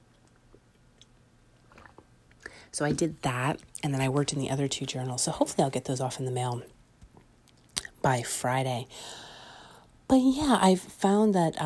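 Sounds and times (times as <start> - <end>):
slurp and swallow of coffee: 0.5 - 2.4
person sipping coffee: 0.6 - 2.7
speech: 2.7 - 6.8, 8.0 - 9.3, 10.1 - 11.6.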